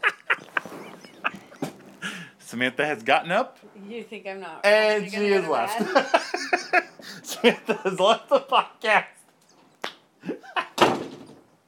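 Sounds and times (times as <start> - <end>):
laughter: 0.0 - 2.3, 5.7 - 8.8
speech: 2.5 - 9.1
door slamming shut with a booming bang: 10.8 - 11.4.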